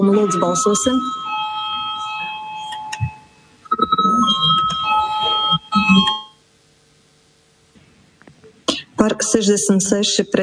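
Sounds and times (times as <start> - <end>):
speech: 0.0 - 1.2, 9.1 - 10.4
electric voting bell ringing in a parliament chamber: 0.0 - 6.5.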